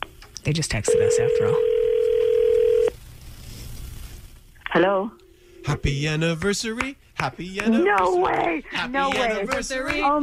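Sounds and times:
speech: 0.4s - 1.7s, 4.7s - 10.2s
electronic phone ringing tone after dialing: 0.9s - 3.0s.

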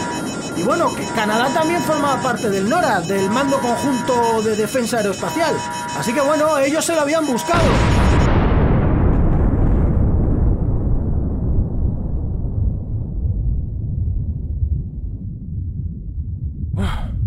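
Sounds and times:
speech: 0.6s - 8.0s
nuclear explosion blast: 7.6s - 16.2s
long deep rumble of nuclear explosion: 7.7s - 17.2s.

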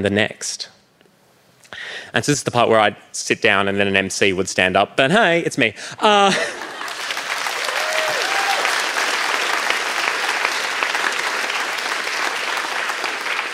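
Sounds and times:
speech: 0.0s - 0.8s, 2.1s - 6.6s
laughter: 6.0s - 7.2s
audience applause at a speaking event: 6.3s - 13.5s.

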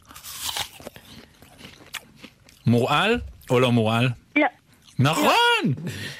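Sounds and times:
crunchy bite into a red apple: 0.0s - 2.3s
apple chewing crunches: 0.0s - 3.6s
speech: 2.6s - 6.1s.

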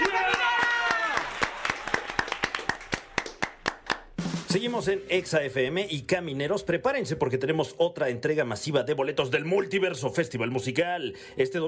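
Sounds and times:
round of clapping: 0.0s - 4.2s
speech: 4.6s - 11.6s.

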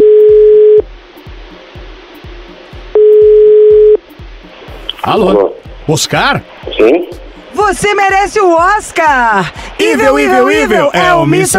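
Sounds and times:
telephone ringback tone of a call waiting to be answered: 0.0s - 0.8s, 3.0s - 4.0s
low rhythmic background: 0.0s - 11.5s
speech: 5.1s - 11.5s.

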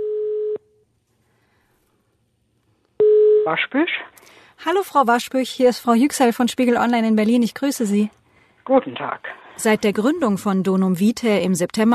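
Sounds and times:
ringback tone of an outgoing telephone call: 0.0s - 0.6s, 3.0s - 3.5s
speech: 3.4s - 11.9s.

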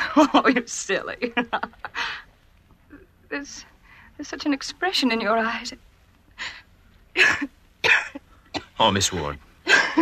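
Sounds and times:
speech: 0.2s - 2.2s, 3.3s - 6.6s, 7.2s - 8.2s, 8.8s - 10.0s
woman coughing lightly with short dry bursts: 7.2s - 8.8s.

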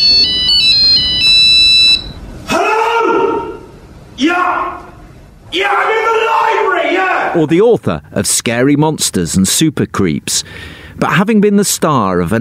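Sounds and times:
giant mobile phone ringtone electronic melody: 0.0s - 2.2s
man shouting in long bellows: 2.5s - 7.5s
speech: 7.4s - 12.3s.

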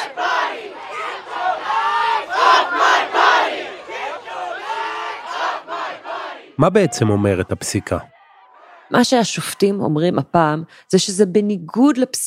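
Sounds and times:
angry protest crowd shouting and chanting in the street: 0.0s - 10.4s
speech: 6.6s - 8.1s, 8.9s - 12.2s.

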